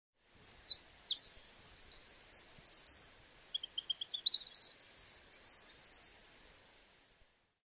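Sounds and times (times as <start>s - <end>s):
White-naped Xenopsaris albinucha albinucha giving thin high whistles and buzzy phrases: 0.7s - 6.1s.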